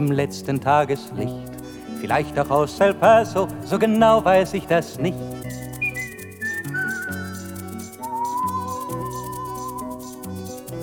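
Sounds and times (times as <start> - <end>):
speech: 0.0 - 5.6
full musical backing: 0.0 - 10.8
person whistling a melody: 4.0 - 10.5.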